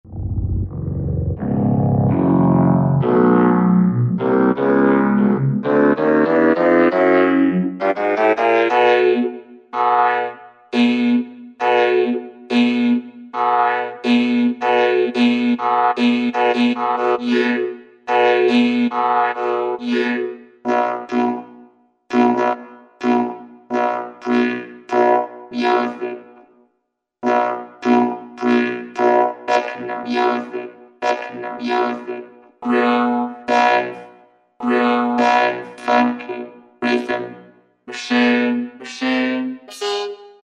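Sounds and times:
vocoder menu sound: 0:00.0 - 0:21.5, 0:22.1 - 0:26.5, 0:27.2 - 0:40.4.

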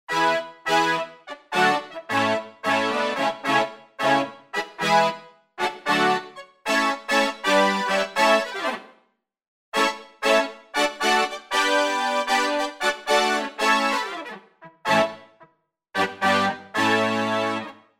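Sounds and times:
session brass on a synthesizer expansion board: 0:00.1 - 0:09.0, 0:09.8 - 0:17.9.

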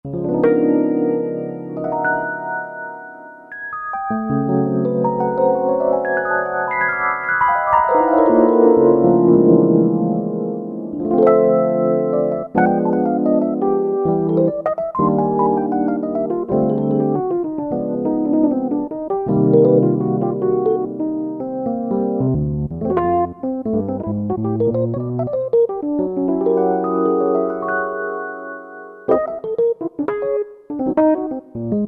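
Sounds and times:
jazz Rhodes electric piano in 1960s and 1970s style: 0:00.0 - 0:31.8.

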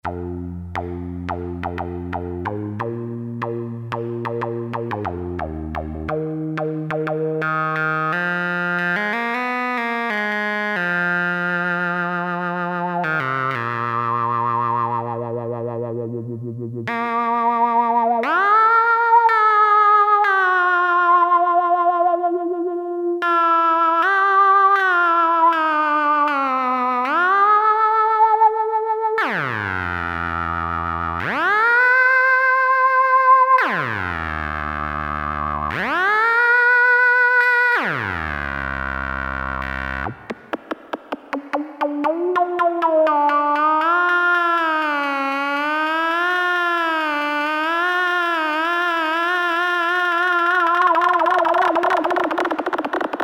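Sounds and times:
Farfisa Syntorchestra alto sax preset with wah-wah and portamento: 0:00.0 - 0:53.2.

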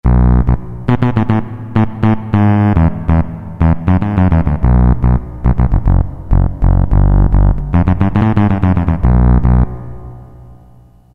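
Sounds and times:
Roland MT-32 electric bass: 0:00.0 - 0:11.1.

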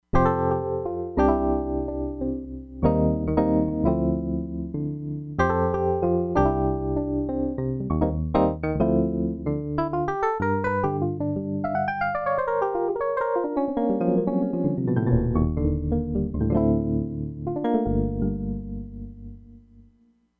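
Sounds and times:
Crumar Bit 99 electric piano: 0:00.1 - 0:19.9.

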